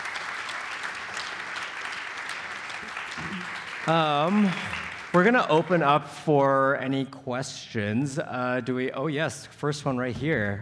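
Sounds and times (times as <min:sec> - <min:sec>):
audience applause for guest speakers: 0:00.0 - 0:05.8
speech: 0:03.3 - 0:10.6.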